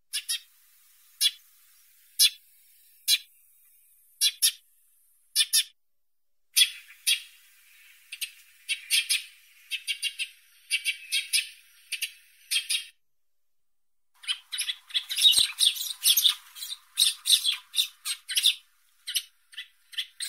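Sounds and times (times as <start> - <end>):
sparrow chirping: 0.1 - 0.4, 4.2 - 4.6, 5.3 - 5.7, 8.1 - 12.9, 14.2 - 20.2.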